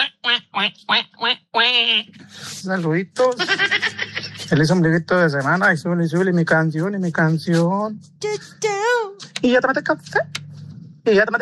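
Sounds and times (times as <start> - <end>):
duck quacking: 0.0 - 2.2
speech: 0.6 - 10.4, 11.1 - 11.3
laughter: 2.2 - 5.0.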